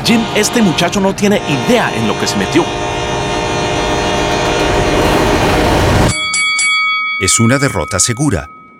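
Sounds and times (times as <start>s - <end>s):
heavy freight train thundering past: 0.0s - 6.1s
speech: 0.1s - 2.9s, 7.2s - 8.6s.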